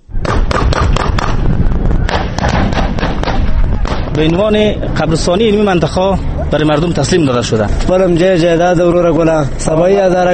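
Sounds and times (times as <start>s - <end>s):
scattered gunfire: 0.2s - 1.4s, 2.1s - 4.4s
speech: 4.2s - 10.3s.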